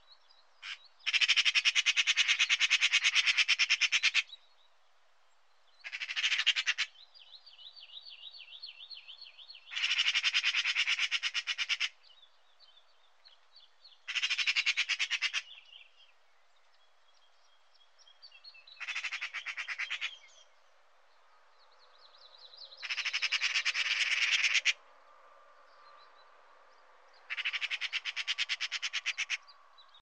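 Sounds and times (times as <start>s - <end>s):
Pica pica: 0.6s - 4.3s, 5.8s - 6.9s, 9.7s - 12.0s, 14.1s - 15.6s, 18.8s - 20.3s, 22.8s - 24.8s, 27.3s - 29.4s.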